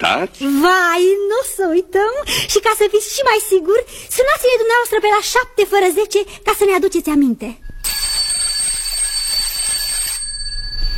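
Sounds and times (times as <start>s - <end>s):
speech: 0.0s - 7.7s
metallic alarm clock bell ringing: 7.8s - 10.9s.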